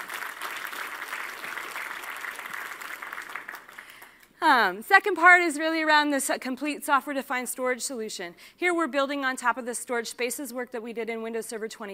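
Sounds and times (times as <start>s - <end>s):
audience applause: 0.0s - 4.2s
speech: 4.4s - 11.9s.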